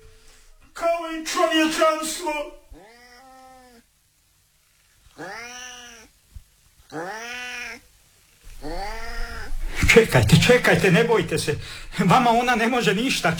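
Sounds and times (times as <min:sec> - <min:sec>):
speech: 0:01.2 - 0:02.6, 0:06.9 - 0:07.2, 0:10.0 - 0:13.3
black cat meowing: 0:02.8 - 0:03.8, 0:05.1 - 0:06.1, 0:06.8 - 0:07.9, 0:08.5 - 0:09.8.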